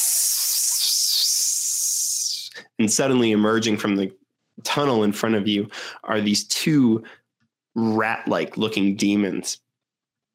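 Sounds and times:
voice imitating a hissing sound: 0:00.0 - 0:02.6
speech: 0:02.8 - 0:07.2, 0:07.8 - 0:09.6.

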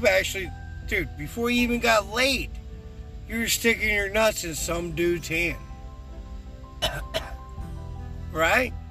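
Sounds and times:
speech: 0:00.0 - 0:02.6, 0:03.3 - 0:05.6, 0:08.3 - 0:08.8
short breathy cough bursts: 0:06.8 - 0:07.4.

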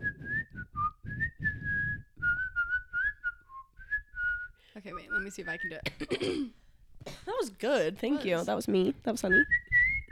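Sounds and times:
person whistling a melody: 0:00.0 - 0:05.8, 0:09.3 - 0:10.1
speech: 0:05.2 - 0:06.6, 0:07.2 - 0:09.6.

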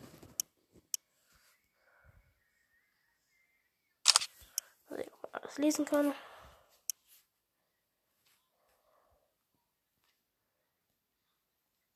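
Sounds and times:
camera shutter clicks with flash on: 0:04.1 - 0:04.4
speech: 0:05.6 - 0:06.3.

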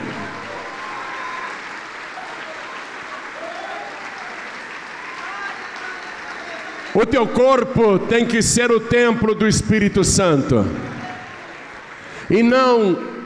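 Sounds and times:
brief cheers: 0:00.0 - 0:07.0
large crowd applauding: 0:00.0 - 0:07.8, 0:10.3 - 0:13.2
speech: 0:07.0 - 0:11.0, 0:12.3 - 0:13.1.

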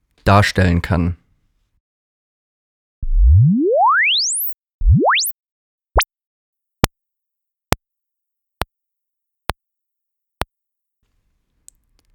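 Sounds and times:
speech: 0:00.3 - 0:01.2
rising exponential sine sweep played faster and faster: 0:03.0 - 0:05.3.

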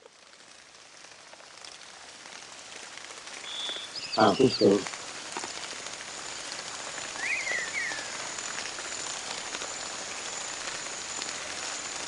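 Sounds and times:
steady rain pattering on a surface: 0:00.0 - 0:12.0
scattered drips: 0:00.8 - 0:12.0
speech: 0:04.2 - 0:05.0.

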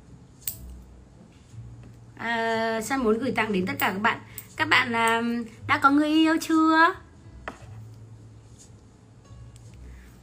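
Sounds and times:
hum: 0:00.0 - 0:10.2
fingernails being clipped short for guitar playing: 0:00.4 - 0:00.8
speech: 0:02.2 - 0:07.0.

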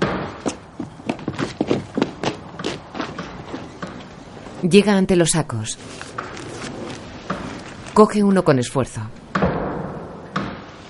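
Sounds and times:
footsteps going down a staircase: 0:00.0 - 0:04.6
speech: 0:04.6 - 0:06.2, 0:08.0 - 0:09.2.

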